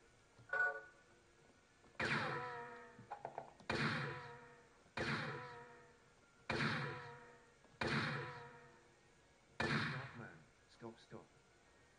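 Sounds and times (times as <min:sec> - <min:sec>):
revolver gunshots in a video game: 0:02.0 - 0:03.0, 0:03.7 - 0:05.9, 0:06.5 - 0:08.7, 0:09.6 - 0:10.4
speech: 0:10.8 - 0:11.4.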